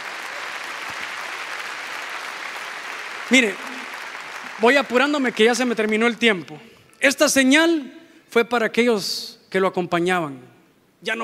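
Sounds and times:
audience applauding: 0:00.0 - 0:06.6
speech: 0:03.3 - 0:03.8, 0:04.6 - 0:11.2.

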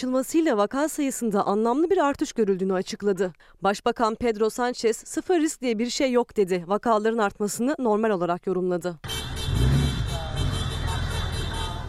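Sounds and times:
speech: 0:00.0 - 0:09.8
convoy of cars and motorcycles engines droning and rumbling: 0:09.1 - 0:11.8
faint horn-like tone: 0:09.1 - 0:11.8
indistinct voices: 0:10.0 - 0:11.8.

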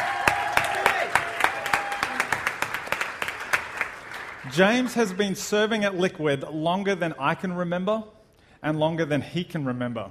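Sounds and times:
audience applause at a send-off: 0:00.0 - 0:05.4
speech: 0:04.5 - 0:10.0.

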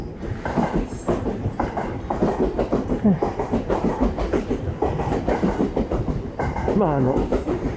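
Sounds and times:
train wheels clacking over rail joints: 0:00.0 - 0:07.7
speech: 0:03.0 - 0:03.3, 0:06.8 - 0:07.4.

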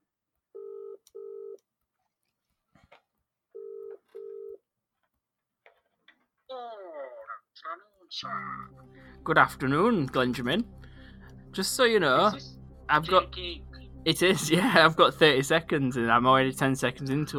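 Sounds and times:
phone ringback tones over a speakerphone: 0:03.6 - 0:04.6
person talking on a phone call over a speakerphone: 0:06.5 - 0:08.7
speech: 0:07.8 - 0:10.8, 0:11.6 - 0:17.3.

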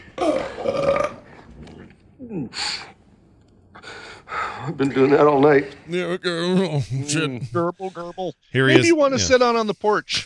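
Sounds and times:
softer throaty grunts: 0:00.0 - 0:02.8
loud drawn-out burp: 0:00.1 - 0:01.8
short breathy hiss: 0:03.7 - 0:05.3
speech: 0:04.7 - 0:10.2.

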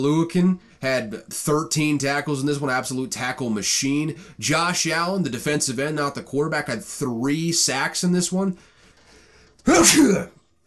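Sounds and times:
speech: 0:00.0 - 0:08.7, 0:09.6 - 0:10.4
person sneezing loudly: 0:09.6 - 0:10.4.

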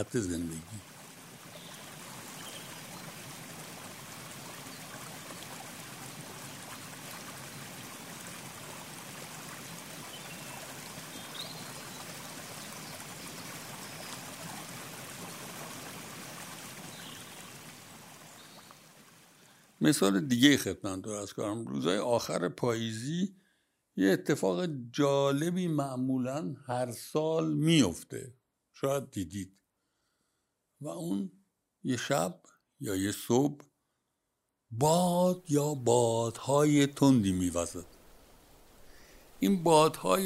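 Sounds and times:
speech: 0:00.0 - 0:00.9, 0:19.8 - 0:23.4, 0:24.0 - 0:29.6, 0:30.8 - 0:33.7, 0:34.7 - 0:38.0, 0:39.4 - 0:40.2
waterfall water pouring down: 0:00.0 - 0:19.8, 0:34.8 - 0:40.2.

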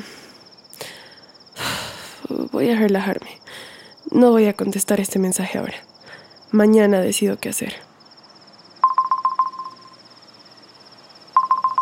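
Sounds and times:
speech: 0:02.3 - 0:03.4, 0:04.1 - 0:05.9, 0:06.5 - 0:07.9
faint high whine: 0:08.5 - 0:11.8
phone ringing with an incoming call: 0:08.8 - 0:10.0, 0:11.4 - 0:11.8.

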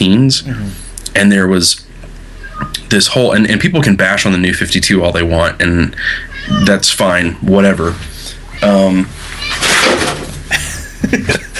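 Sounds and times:
speech: 0:00.0 - 0:01.9, 0:02.6 - 0:10.0, 0:11.0 - 0:11.5
cat yowling loudly: 0:06.3 - 0:06.8, 0:08.4 - 0:09.6
household scuffling and clattering: 0:09.2 - 0:10.5
laughter: 0:10.5 - 0:11.5.

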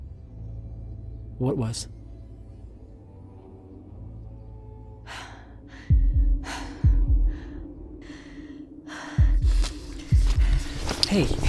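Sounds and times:
speech: 0:01.4 - 0:02.0, 0:11.1 - 0:11.4
deep thumping double beats like a heartbeat: 0:04.2 - 0:11.4
heavy panting breaths: 0:04.2 - 0:11.4
rapid ragged panicked gasps: 0:04.9 - 0:10.9.

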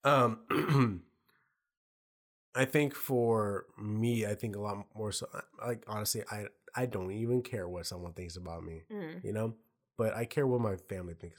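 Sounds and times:
speech: 0:00.0 - 0:01.0, 0:02.6 - 0:11.3
throat clearing: 0:00.1 - 0:01.0.

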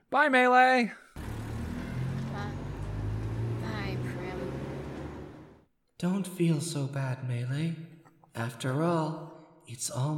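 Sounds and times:
speech: 0:00.1 - 0:01.0, 0:06.0 - 0:10.1
bus engine rumbling as the bus pulls away: 0:01.2 - 0:05.7.

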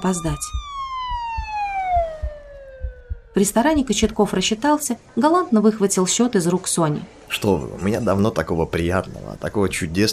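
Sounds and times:
speech: 0:00.0 - 0:00.7, 0:03.4 - 0:10.1
police car siren wailing on an evening road: 0:00.0 - 0:03.4.

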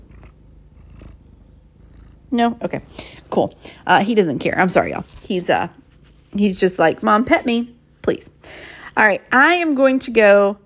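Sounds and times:
cat purring: 0:00.0 - 0:07.1
speech: 0:02.3 - 0:10.6.

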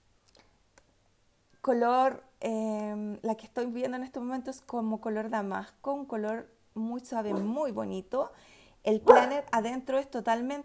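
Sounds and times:
speech: 0:01.6 - 0:10.6
dog barking: 0:07.3 - 0:07.6, 0:09.0 - 0:09.5.

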